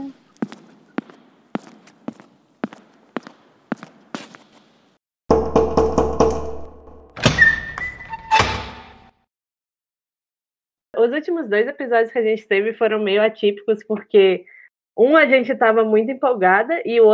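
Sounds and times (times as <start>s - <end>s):
sharp knocks on a door: 5.3s - 7.3s
door creaking as it swings open: 6.2s - 9.1s
door handle rattling: 7.2s - 8.8s
speech: 11.0s - 17.1s.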